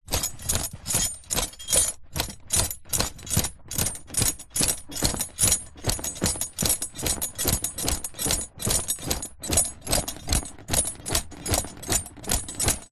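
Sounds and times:
metal jingles of horse riding tack: 0:00.0 - 0:12.9
horse running: 0:00.1 - 0:12.9
leather horse riding saddle movements: 0:00.1 - 0:12.9.

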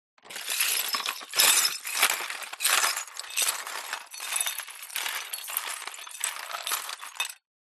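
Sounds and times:
dustpan brush sweeping wet broken beer bottle glass: 0:00.2 - 0:07.4.

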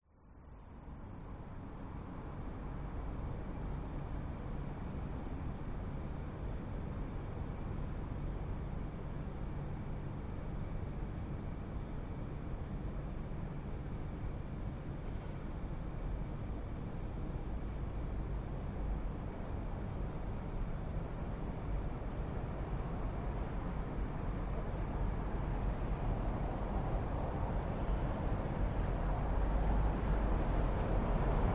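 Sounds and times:
city ambience at night: 0:00.0 - 0:31.5
cars passing by in a city at night: 0:29.3 - 0:31.5.

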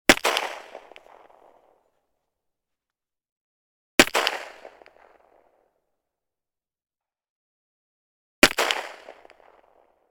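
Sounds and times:
Walther PPQ pistol gunshot: 0:00.1 - 0:01.7, 0:04.0 - 0:05.4, 0:08.4 - 0:10.0.

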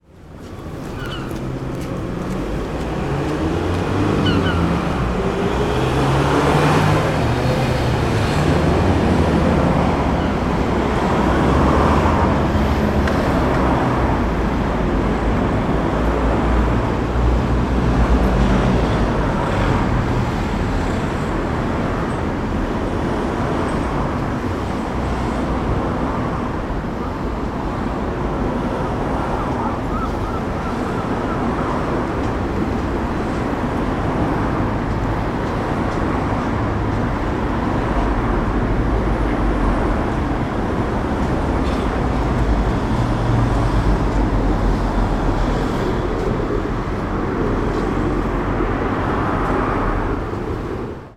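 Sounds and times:
town traffic moving off at a green light: 0:00.0 - 0:51.1
seagulls calling: 0:00.4 - 0:02.4, 0:03.5 - 0:05.2, 0:28.6 - 0:32.2.

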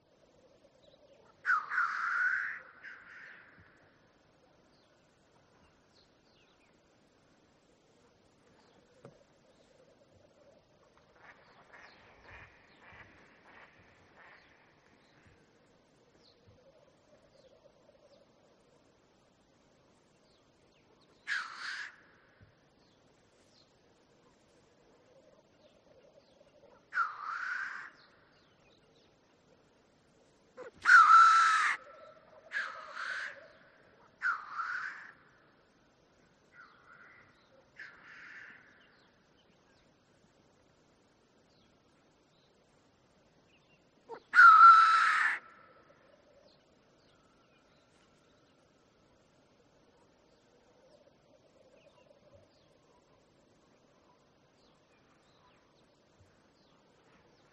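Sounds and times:
black grouse calling: 0:00.0 - 0:04.0, 0:08.5 - 0:18.9, 0:20.8 - 0:22.4, 0:24.2 - 0:28.6, 0:30.5 - 0:35.5, 0:36.5 - 0:39.1, 0:44.0 - 0:48.2, 0:49.8 - 0:55.9.

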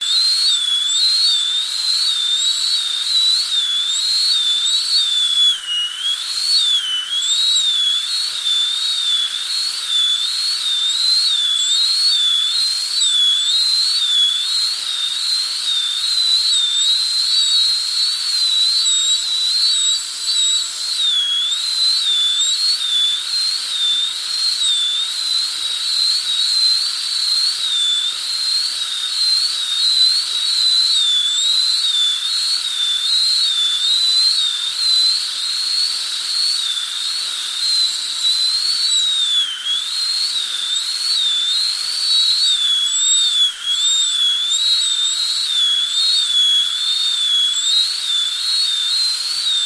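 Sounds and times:
windy suction whistle: 0:00.0 - 0:49.6.

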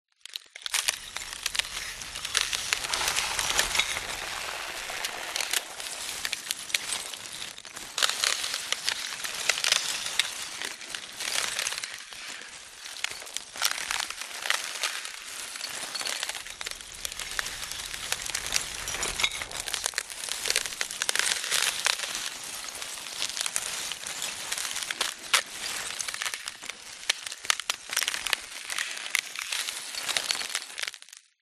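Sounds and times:
earth cracking: 0:00.2 - 0:31.2
rock debris splitting and falling in: 0:00.2 - 0:31.2
earthquake: 0:01.7 - 0:06.0.

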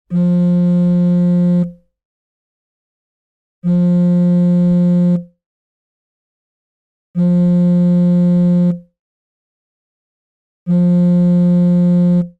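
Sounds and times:
cell phone vibrating in hand: 0:00.1 - 0:01.9, 0:03.6 - 0:05.4, 0:07.2 - 0:09.0, 0:10.7 - 0:12.3.

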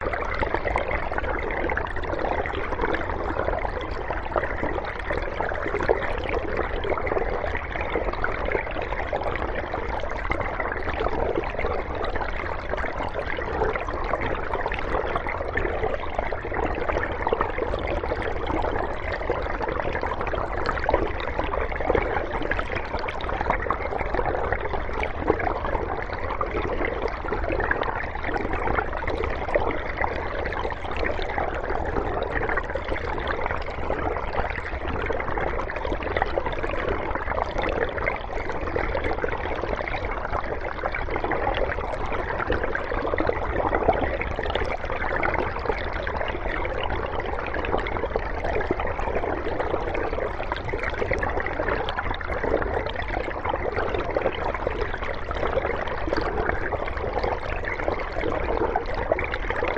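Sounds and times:
river heard underwater: 0:00.0 - 0:59.7.

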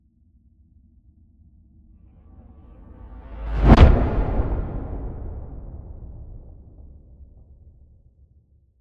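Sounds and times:
swell to metallic impact: 0:02.6 - 0:07.4.

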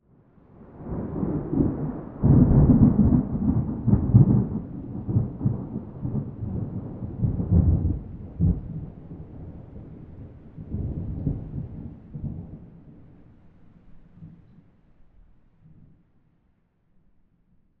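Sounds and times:
thunder in nature: 0:00.6 - 0:13.2.

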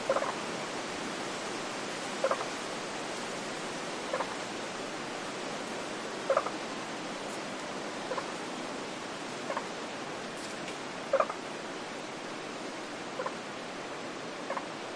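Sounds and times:
wind in the rainforest tree canopy in Queensland, Australia: 0:00.0 - 0:14.9
scarlet-sided pobblebonk plunking calls in spring in Queensland rainforest: 0:00.1 - 0:00.4, 0:02.2 - 0:02.4, 0:04.1 - 0:04.4, 0:06.3 - 0:06.5, 0:09.5 - 0:09.7, 0:11.1 - 0:11.4.

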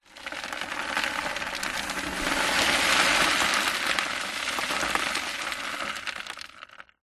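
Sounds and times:
stones and small debris in cardboard box tipped to the side: 0:00.2 - 0:06.9.

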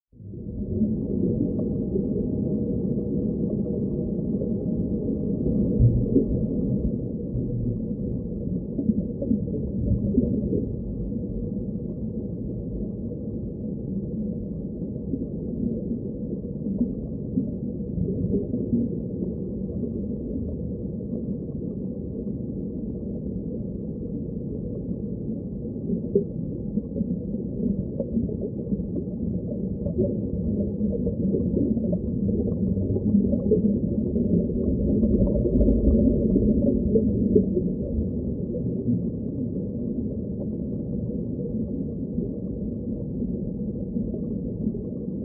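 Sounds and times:
underwater ambience in coral sea: 0:00.1 - 0:45.2.

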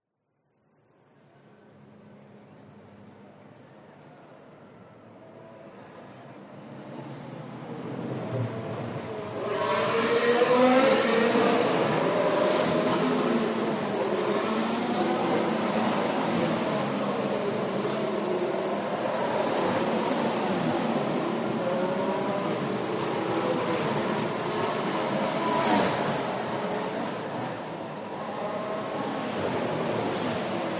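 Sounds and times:
F1 race car passing at speed on a race track: 0:08.0 - 0:30.7.

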